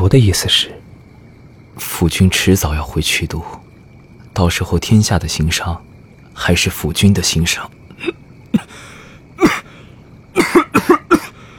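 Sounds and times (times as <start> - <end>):
speech: 0.1 - 0.8, 1.8 - 3.6, 4.4 - 8.6
person coughing: 8.0 - 8.8, 9.4 - 9.7, 10.4 - 11.4.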